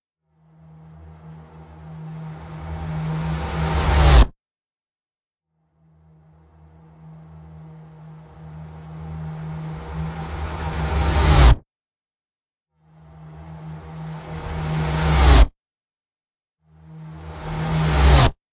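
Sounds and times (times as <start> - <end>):
cinematic designed sci-fi riser: 1.3 - 4.3, 8.2 - 11.6, 17.2 - 18.3.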